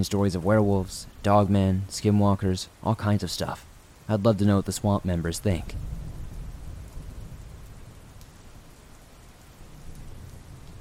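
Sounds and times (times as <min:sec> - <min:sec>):
speech: 0:00.0 - 0:06.0
heavy rain tapping on the windows of a cabin: 0:00.0 - 0:10.7
deep continuous thunder rumble: 0:04.9 - 0:08.9, 0:09.5 - 0:10.7.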